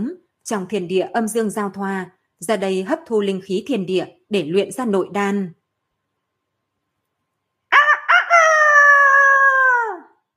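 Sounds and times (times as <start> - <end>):
speech: 0.0 - 5.6
rooster crowing: 7.7 - 10.2.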